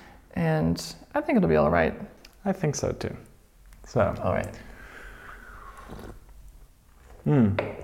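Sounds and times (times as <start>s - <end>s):
speech: 0.4s - 3.3s, 3.9s - 4.7s, 5.9s - 6.2s, 7.2s - 7.8s
slurping coffee from a cup: 4.6s - 7.3s.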